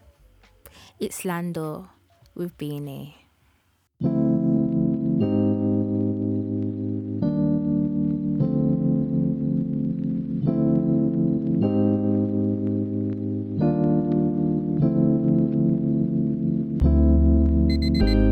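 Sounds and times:
speech: 0:01.0 - 0:03.2
loud steady synth chords of a rap single: 0:04.0 - 0:18.3
deep bass: 0:16.8 - 0:18.3.

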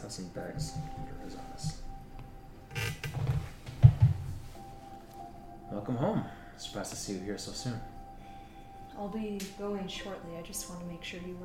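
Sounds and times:
speech: 0:00.1 - 0:01.9, 0:05.7 - 0:07.9, 0:09.0 - 0:11.4
rustling and creaking: 0:00.6 - 0:05.3.

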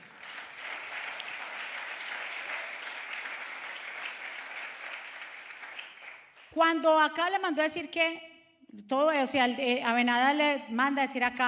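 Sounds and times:
loud applause from a large audience: 0:00.0 - 0:06.5
speech: 0:06.6 - 0:11.4.

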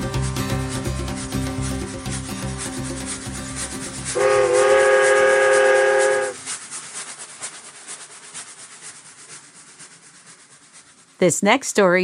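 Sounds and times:
train rumbling on rails with rhythmic chugging: 0:00.2 - 0:06.5
train whistle blast: 0:04.2 - 0:06.4
speech: 0:11.2 - 0:12.0.

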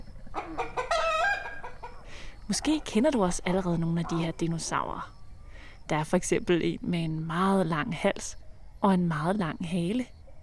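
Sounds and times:
chicken clucking: 0:00.0 - 0:04.4
chicken drawn-out squawking call: 0:00.4 - 0:02.0
speech: 0:02.5 - 0:05.2, 0:05.9 - 0:10.2.

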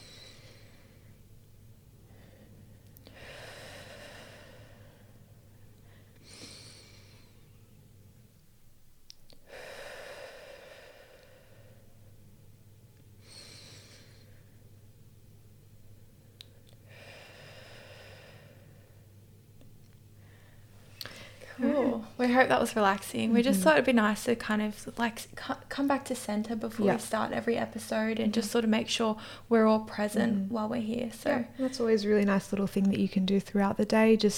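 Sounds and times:
slow deep breathing into belly and chest during guided breathing exercise: 0:00.0 - 0:01.3, 0:02.0 - 0:07.6, 0:09.4 - 0:12.2, 0:13.2 - 0:14.8, 0:16.2 - 0:19.2, 0:20.2 - 0:21.6
speech: 0:21.7 - 0:34.3.

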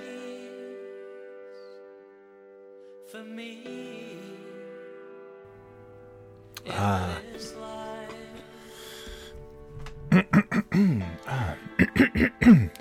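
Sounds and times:
speech: 0:03.1 - 0:04.1, 0:06.6 - 0:07.6, 0:10.7 - 0:12.7
person clearing throat: 0:10.1 - 0:12.7.

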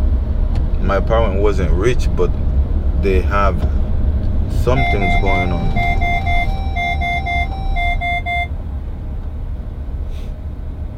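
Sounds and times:
low engine and road rumble: 0:00.0 - 0:10.9
speech: 0:00.9 - 0:03.8, 0:04.5 - 0:06.3
car collision sensor alarm beeping: 0:04.7 - 0:08.5.

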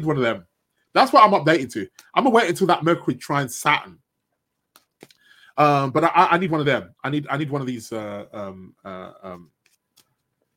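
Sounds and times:
speech: 0:00.0 - 0:04.0, 0:05.0 - 0:09.6
shuffling a deck of cards: 0:04.7 - 0:05.2, 0:09.4 - 0:10.5.

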